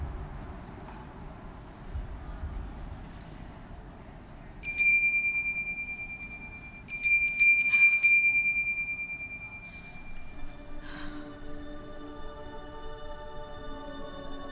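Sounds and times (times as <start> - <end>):
low rumble: 0.0 - 14.4
bell ringing: 4.6 - 10.8.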